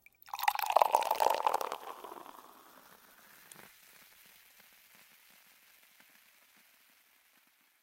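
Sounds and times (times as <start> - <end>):
juice pouring: 0.0 - 3.6.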